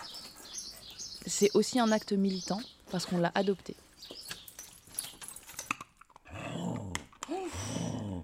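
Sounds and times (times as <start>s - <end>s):
speech: 1.2s - 4.2s
large female labrador-shepherd mix dog growling: 6.2s - 8.2s.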